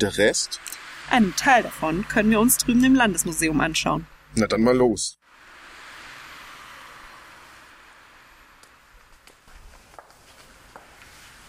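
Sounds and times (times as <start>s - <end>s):
speech: 0.0s - 5.2s
steady hiss: 0.0s - 11.4s
footsteps of a person walking outdoors: 8.6s - 11.4s.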